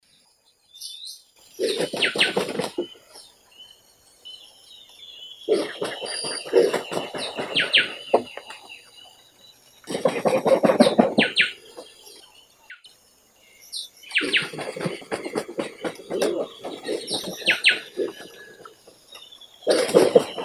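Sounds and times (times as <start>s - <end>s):
black vulture Aegypius monachus: 1.6s - 3.2s, 5.5s - 8.7s, 9.8s - 12.2s, 13.8s - 18.9s, 19.6s - 20.4s.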